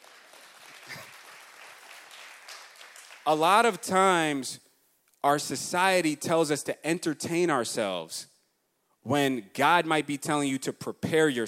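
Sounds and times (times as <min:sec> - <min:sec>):
audience applause: 0:00.0 - 0:03.4
speech: 0:03.2 - 0:04.6, 0:05.2 - 0:08.3, 0:09.0 - 0:11.4.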